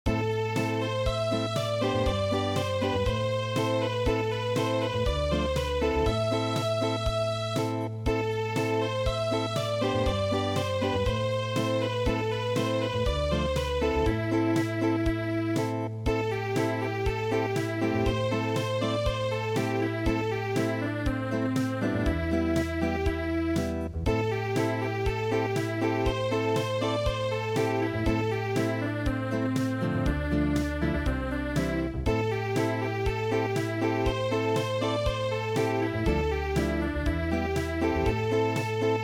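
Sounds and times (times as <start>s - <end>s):
traditional acoustic march in midi: 0.1s - 39.0s.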